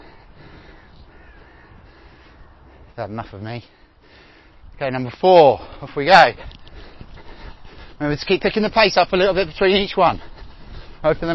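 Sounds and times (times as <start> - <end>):
crow cawing: 0.0 - 2.9
outdoor noise: 0.0 - 11.3
speech: 3.0 - 4.2, 4.8 - 6.6, 8.0 - 10.3, 11.0 - 11.3.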